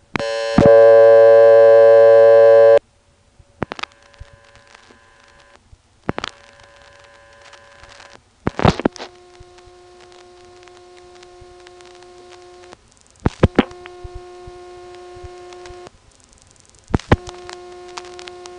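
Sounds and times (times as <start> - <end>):
clicks and telephone line static: 0.0 - 2.8, 3.6 - 18.5
telephone line double ring tone: 0.2 - 2.8.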